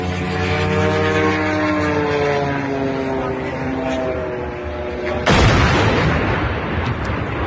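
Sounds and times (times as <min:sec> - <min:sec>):
drone engine droning in a Moscow suburb: 0:00.0 - 0:07.4.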